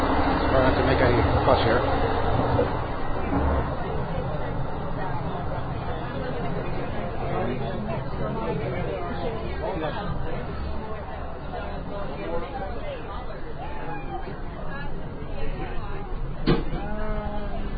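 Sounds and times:
low rumbling background in a train dining car: 0:00.0 - 0:17.7
murmur of many overlapping voices in a train dining car: 0:00.0 - 0:17.7
speech: 0:00.6 - 0:03.8.

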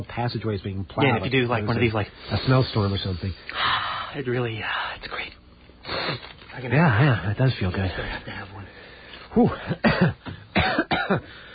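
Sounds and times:
speech: 0:00.0 - 0:05.4, 0:06.1 - 0:10.4, 0:11.1 - 0:11.5
person coughing: 0:09.6 - 0:11.4.

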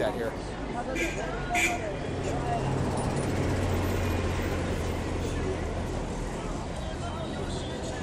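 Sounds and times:
speech: 0:00.0 - 0:03.0
buses rumbling along a busy city street: 0:00.0 - 0:08.0
city street traffic noise: 0:00.0 - 0:08.0.

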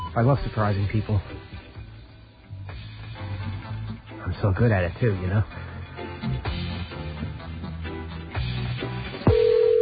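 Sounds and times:
music: 0:00.0 - 0:09.8
speech: 0:00.2 - 0:01.6, 0:04.3 - 0:06.4
telephone ringback tone heard through the line on an outgoing call: 0:09.3 - 0:09.8.

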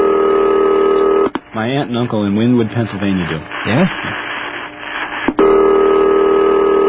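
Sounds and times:
telephone with an old-fashioned ring on an overseas call: 0:00.0 - 0:01.3, 0:05.4 - 0:06.8
speech: 0:01.6 - 0:04.1.

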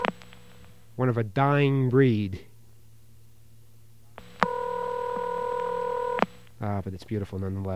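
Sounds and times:
click on a telephone line: 0:00.0 - 0:00.7, 0:04.2 - 0:06.6
speech: 0:01.0 - 0:02.5, 0:06.6 - 0:07.7.

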